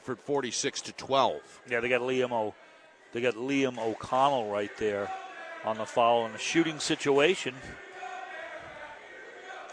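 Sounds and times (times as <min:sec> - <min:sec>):
speech: 0:00.0 - 0:07.9
basketball fans chanting a mocking cheer: 0:03.8 - 0:09.7.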